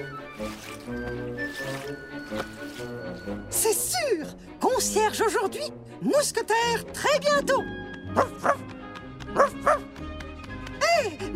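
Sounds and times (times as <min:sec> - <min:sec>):
speech: 0:00.0 - 0:01.2, 0:03.3 - 0:08.8
dog barking: 0:08.2 - 0:08.6, 0:09.3 - 0:09.9.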